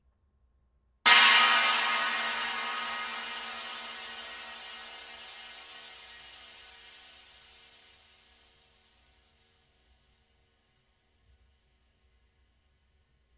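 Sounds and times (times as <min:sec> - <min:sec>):
22-inch swish cymbal with rivets: 0:01.1 - 0:07.6.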